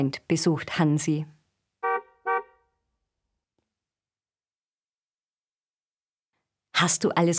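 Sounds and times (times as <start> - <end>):
speech: 0.0 - 1.4, 6.8 - 7.3
car horn honking: 1.8 - 2.7.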